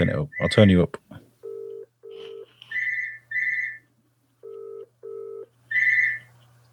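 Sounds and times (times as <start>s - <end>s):
speech: 0.0s - 1.0s
electronic telephone ring of low and higher chirping tones: 1.4s - 2.5s, 4.4s - 6.1s.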